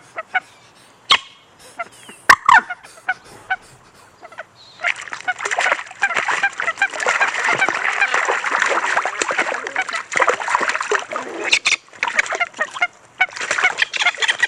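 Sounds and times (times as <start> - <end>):
waterfowl honking while fighting on a duck pond: 0.0 - 14.4
waterfowl wings flapping and splashing on a duck pond: 4.3 - 14.4.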